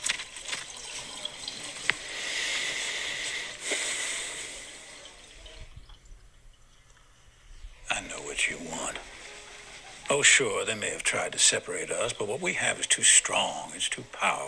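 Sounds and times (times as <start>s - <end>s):
water splashes and drips from hand washing: 0.0s - 7.4s
running water while hands are washed: 0.0s - 14.4s
speech: 8.4s - 9.1s, 10.1s - 14.4s.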